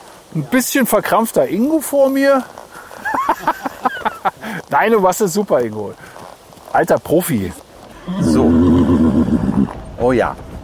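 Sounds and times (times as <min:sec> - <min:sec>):
faint rhythmic horse hoof clops: 0:00.0 - 0:10.6
speech: 0:00.3 - 0:02.6, 0:04.2 - 0:06.2, 0:06.8 - 0:08.5, 0:10.0 - 0:10.5
laughter: 0:02.8 - 0:04.6
horse whinnying: 0:07.8 - 0:09.9.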